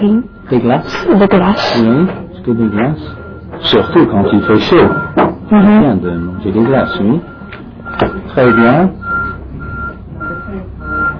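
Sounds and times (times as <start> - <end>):
truck reversing alarm beeps: 0.0 - 11.1
speech: 0.1 - 7.3, 8.0 - 9.0
truck engine idling: 2.3 - 11.1.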